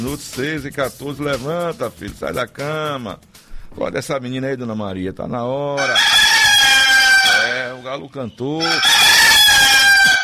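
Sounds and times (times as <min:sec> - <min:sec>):
speech: 0:00.0 - 0:06.2, 0:07.8 - 0:09.1
rooster crowing: 0:05.8 - 0:07.8, 0:08.6 - 0:10.2.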